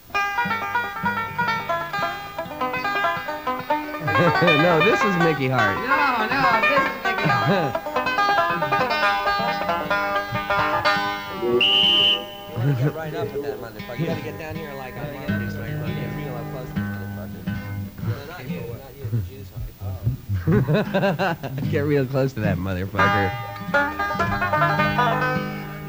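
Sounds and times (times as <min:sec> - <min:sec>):
busy background of overlapping voices: 0:00.0 - 0:25.8
laughter: 0:00.5 - 0:25.8
speech: 0:04.2 - 0:07.9, 0:12.8 - 0:16.8, 0:20.4 - 0:25.2
sharp shrill police whistle blast: 0:11.5 - 0:12.7.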